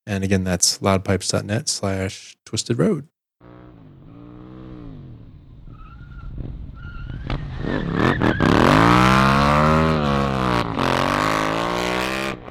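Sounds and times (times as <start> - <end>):
speech: 0.1 - 3.1
vehicle engine revving through a U-turn: 3.4 - 12.4.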